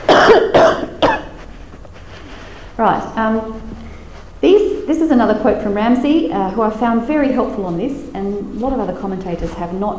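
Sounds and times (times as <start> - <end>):
man coughing: 0.0 - 1.4
speech: 2.8 - 3.8, 4.4 - 9.9.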